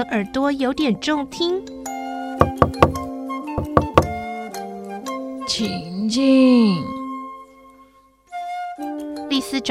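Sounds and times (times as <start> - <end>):
speech: 0.0 - 1.8, 5.6 - 6.9
knuckles rapping on a door: 2.4 - 4.2.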